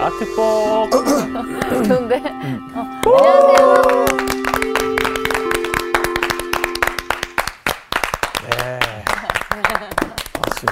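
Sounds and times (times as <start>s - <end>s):
speech: 0.0s - 4.2s
sustained musical tone: 0.0s - 7.6s
audience clapping enthusiastically: 3.0s - 10.7s
laughter: 9.2s - 10.2s.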